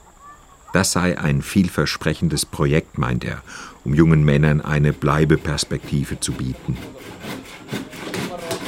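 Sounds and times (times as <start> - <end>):
speech: 0.7 - 7.8
faint murmur of workshop background: 4.3 - 8.6
hand saw cutting through wood in a carpentry training workshop: 4.6 - 8.6.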